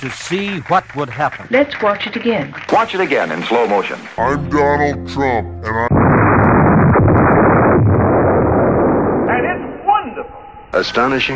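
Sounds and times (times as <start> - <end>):
speech: 0.0 - 6.0, 10.8 - 11.3
loud rumbling explosion: 5.9 - 9.8.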